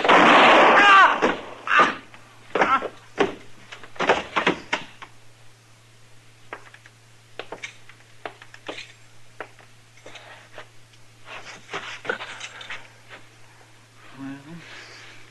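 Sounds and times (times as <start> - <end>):
revolver gunshots: 0.0 - 1.7.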